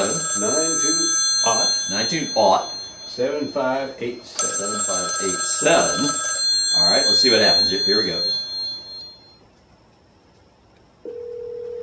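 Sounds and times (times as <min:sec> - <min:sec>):
phone call ringback tone through a small Bluetooth speaker: 0:00.0 - 0:03.7, 0:04.4 - 0:09.4, 0:11.1 - 0:11.8
speech: 0:01.9 - 0:04.7, 0:05.6 - 0:08.4.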